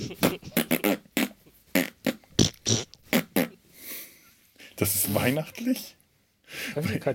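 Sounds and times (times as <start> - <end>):
laughter: 0.0 - 0.9
mouth-made raspberry fart noises: 0.0 - 3.6
speech: 4.8 - 6.0, 6.8 - 7.1.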